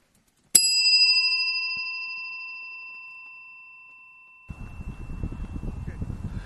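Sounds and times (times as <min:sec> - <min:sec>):
bright bell strike ringing: 0:00.6 - 0:06.0
light gusty wind buffeting the microphone: 0:04.5 - 0:06.4.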